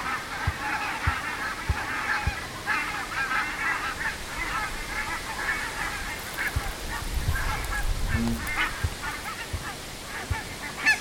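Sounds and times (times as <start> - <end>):
barnacle geese yapping in a busy flock chorus: 0.0 - 10.9
rumbling noise: 6.5 - 9.7
low thumps: 6.5 - 10.5.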